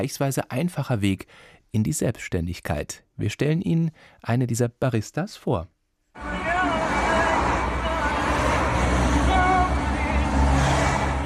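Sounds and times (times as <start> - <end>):
speech: 0.0 - 6.4
cars rushing past on a road in Salé Morocco: 6.2 - 11.2.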